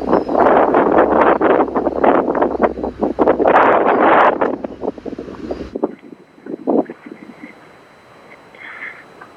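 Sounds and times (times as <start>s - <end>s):
strong gusty wind buffeting the microphone: 0.0s - 7.6s.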